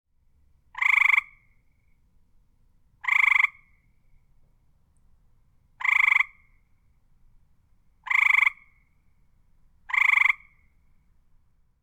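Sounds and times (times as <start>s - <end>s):
tree frog croaking in a small pond: 0.8s - 1.5s, 3.0s - 3.7s, 5.8s - 6.5s, 8.0s - 8.8s, 9.9s - 10.6s.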